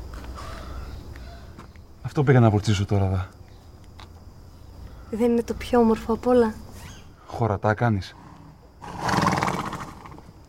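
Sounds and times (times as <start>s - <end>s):
speech: 2.1s - 3.4s, 5.1s - 6.6s, 7.3s - 8.2s
mare neighing: 8.1s - 10.3s.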